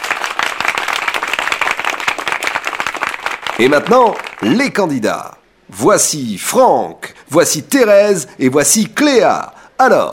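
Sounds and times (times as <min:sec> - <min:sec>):
studio audience applause: 0:00.0 - 0:04.6
speech: 0:03.6 - 0:10.1.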